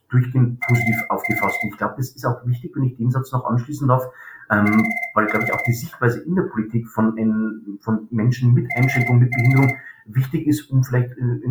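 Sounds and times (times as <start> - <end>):
speech: 0.1 - 11.4
telephone ringing: 0.6 - 1.8, 4.6 - 5.9, 8.7 - 9.8.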